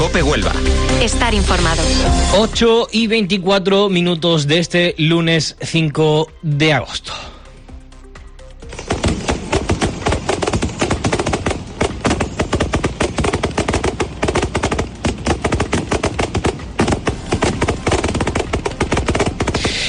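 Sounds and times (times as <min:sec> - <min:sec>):
speech: 0:00.2 - 0:07.3
fireworks display over the estuary in Huelva: 0:08.7 - 0:19.8.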